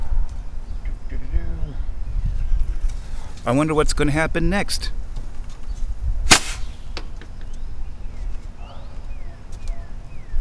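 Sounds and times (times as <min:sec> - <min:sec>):
low noise: 0:00.0 - 0:10.3
speech: 0:03.4 - 0:05.0
bottle rocket launching from a pipe on a back deck: 0:06.3 - 0:07.0.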